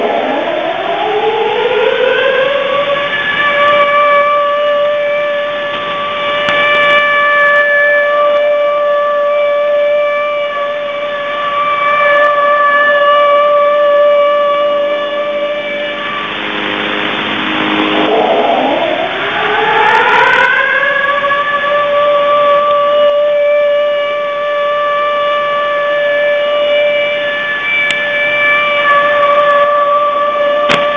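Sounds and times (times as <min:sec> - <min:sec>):
air raid siren signal on 6911 kHz shortwave: 0:00.0 - 0:30.9.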